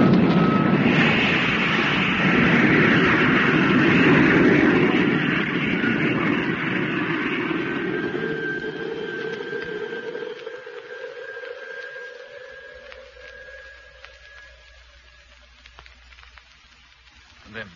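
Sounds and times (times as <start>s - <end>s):
spacecraft rocket motor firing for descent: 0.0s - 15.5s.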